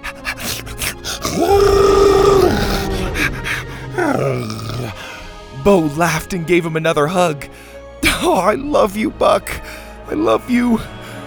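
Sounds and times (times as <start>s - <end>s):
loud drawn-out dinosaur roar: 0.0s - 5.2s
speech: 5.6s - 7.5s, 8.2s - 11.0s.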